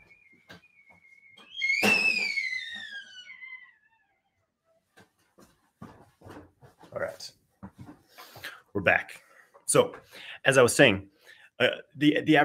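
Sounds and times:
tea kettle whistling: 0:00.0 - 0:03.9
speech: 0:07.2 - 0:07.4, 0:08.8 - 0:12.4.

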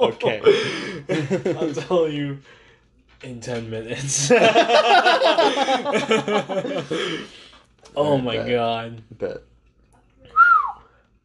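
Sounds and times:
laughter: 0:00.0 - 0:02.0, 0:04.2 - 0:07.4
speech: 0:00.0 - 0:02.6, 0:03.2 - 0:09.5
person whistling: 0:10.3 - 0:10.9.

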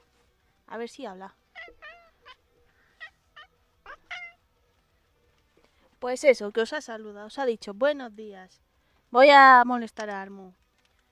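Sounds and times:
speech: 0:00.7 - 0:01.4, 0:06.0 - 0:10.6
cat on a small stool meowing in chirpy calls: 0:01.5 - 0:02.4, 0:03.0 - 0:04.4.

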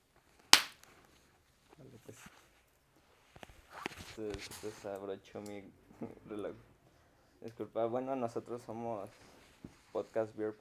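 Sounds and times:
single sharp hand clap to synchronize two recordings: 0:00.5 - 0:00.8
speech: 0:01.9 - 0:02.4, 0:04.2 - 0:06.7, 0:07.4 - 0:10.5.

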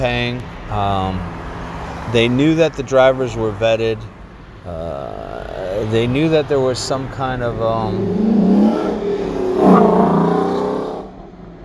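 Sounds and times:
speech: 0:00.0 - 0:01.4, 0:02.1 - 0:08.8
race car engine revving as it drives past: 0:07.4 - 0:11.6.

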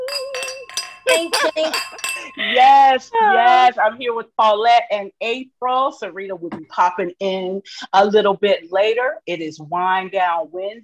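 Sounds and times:
glasses clinking together in a toast: 0:00.0 - 0:03.7
speech: 0:01.1 - 0:10.8.

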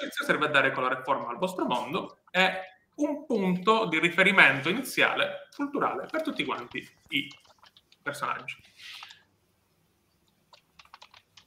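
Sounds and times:
speech: 0:00.0 - 0:09.0
computer keyboard typing a chat message: 0:05.6 - 0:09.3, 0:10.2 - 0:11.4.

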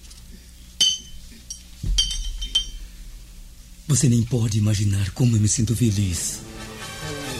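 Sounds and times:
glasses clinking in a toast to a probable engagement: 0:00.8 - 0:03.0
speech: 0:03.9 - 0:06.6.

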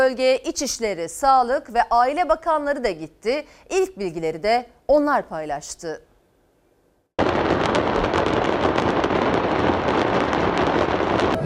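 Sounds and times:
speech: 0:00.0 - 0:06.1
loud continuous roar of fire at an exploded factory: 0:07.2 - 0:11.4
rapid crackling pops of factory fire: 0:07.2 - 0:11.4
small explosive bursts at an exploded factory: 0:07.2 - 0:11.4.

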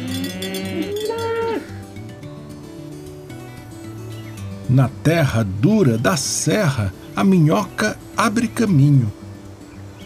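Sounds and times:
cow mooing: 0:00.0 - 0:01.9
cowbells clanking on passing cattle: 0:00.0 - 0:02.4
speech: 0:04.7 - 0:09.2.

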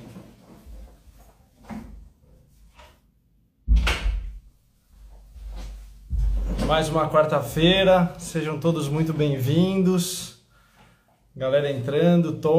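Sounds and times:
shuffling and faint handling noises: 0:00.0 - 0:03.0, 0:04.8 - 0:09.7
door pushed shut with a solid thud: 0:03.7 - 0:04.4, 0:06.1 - 0:07.0
low rumbling knocks: 0:06.1 - 0:07.0
speech: 0:06.7 - 0:10.4, 0:11.4 - 0:12.5.

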